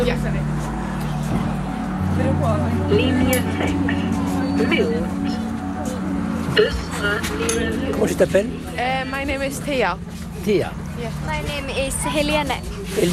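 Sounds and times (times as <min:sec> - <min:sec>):
bus engine rumbling as it pulls in at a school: 0:00.0 - 0:13.1
indistinct voices murmuring: 0:00.0 - 0:13.1
speech: 0:02.4 - 0:05.4, 0:06.6 - 0:13.1.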